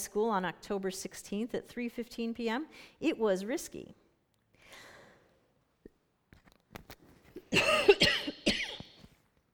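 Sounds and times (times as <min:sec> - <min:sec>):
speech: 0:00.0 - 0:04.0
soft inhale: 0:04.6 - 0:05.5
loud harsh coughs: 0:07.5 - 0:09.0.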